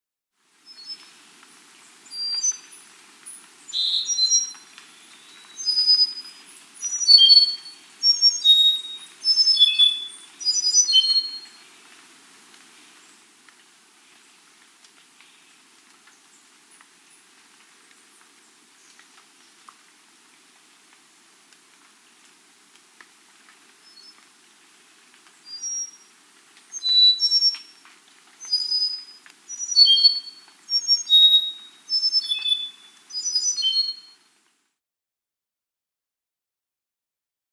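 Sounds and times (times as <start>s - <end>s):
Andean solitaire Myadestes ralloides singing: 2.1s - 2.8s, 3.7s - 11.6s, 25.5s - 26.0s, 26.7s - 27.7s, 28.4s - 34.2s.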